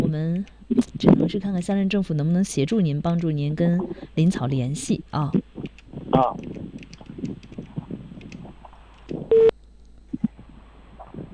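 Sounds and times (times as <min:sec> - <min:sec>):
speech: 0:00.1 - 0:05.4, 0:06.2 - 0:06.6
loud steady electronic telephone tone as a call is dialed: 0:09.3 - 0:09.5.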